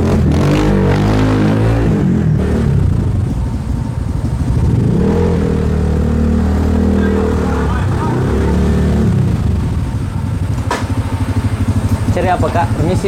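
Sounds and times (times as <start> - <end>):
motorcycle engine revving and idling: 0.0 - 13.0
street noise: 0.0 - 13.0
speech: 12.3 - 13.0.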